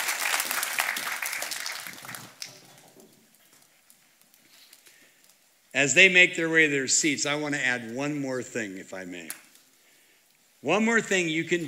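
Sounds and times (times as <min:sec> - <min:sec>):
audience applause at a church service: 0:00.0 - 0:02.5
speech: 0:05.8 - 0:09.4, 0:10.6 - 0:11.6.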